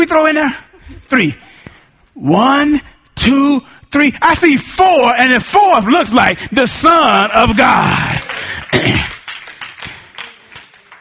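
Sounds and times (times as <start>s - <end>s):
speech: 0.0s - 1.6s, 2.2s - 9.2s
audience clapping: 7.4s - 10.9s.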